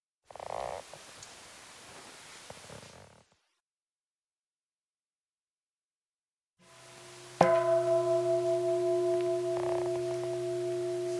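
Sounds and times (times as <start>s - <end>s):
single bell struck and ringing: 7.4s - 11.1s.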